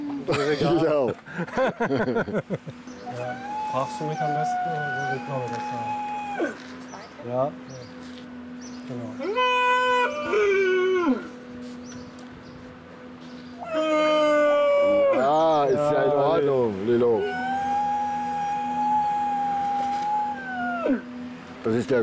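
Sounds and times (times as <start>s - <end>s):
laughter: 0.2s - 2.8s
speech: 0.3s - 7.8s, 8.9s - 11.3s, 21.6s - 22.0s
seal pups wailing: 3.0s - 6.9s, 9.2s - 11.3s, 13.6s - 16.4s, 17.0s - 21.2s.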